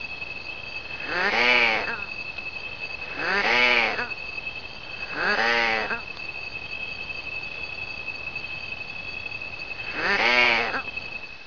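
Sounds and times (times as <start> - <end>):
striped possum call: 1.0 - 2.1, 3.0 - 4.1, 5.0 - 6.1, 9.8 - 11.0.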